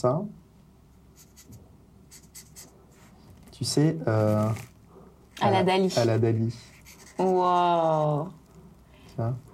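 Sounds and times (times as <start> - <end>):
speech: 0.0 - 0.4, 3.6 - 4.7, 5.4 - 8.4, 9.2 - 9.5
pen scratching across paper while drawing a clock: 1.2 - 3.1, 6.7 - 7.6.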